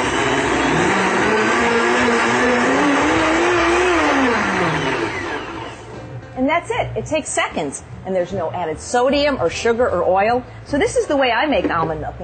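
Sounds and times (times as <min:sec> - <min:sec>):
blender blending almond butter and water: 0:00.0 - 0:06.0
speech: 0:07.0 - 0:12.2.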